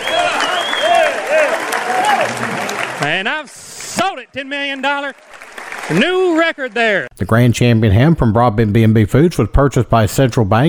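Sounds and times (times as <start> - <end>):
whoops and cheering voices: 0.0 - 2.9
crowd applauding after an auction sale: 0.0 - 7.1
speech: 3.0 - 5.3, 5.9 - 10.6.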